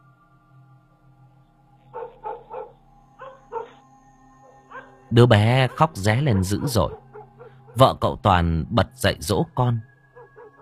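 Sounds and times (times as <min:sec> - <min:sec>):
dogs barking in a village: 0:01.9 - 0:03.8, 0:04.5 - 0:07.9, 0:10.2 - 0:10.6
speech: 0:05.1 - 0:07.0, 0:07.8 - 0:09.9.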